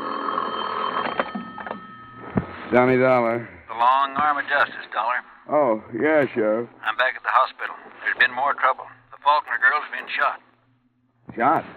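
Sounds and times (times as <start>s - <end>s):
telephone bell ringing: 0.0s - 2.8s
speech: 2.7s - 10.5s, 11.3s - 11.7s.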